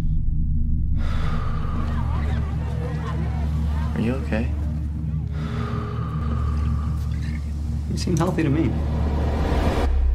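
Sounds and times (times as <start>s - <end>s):
low hum: 0.0s - 10.1s
deep breath during a medical check-up: 0.9s - 2.2s, 5.3s - 7.9s
laughter: 1.5s - 6.4s
speech: 4.0s - 4.6s, 8.0s - 9.0s.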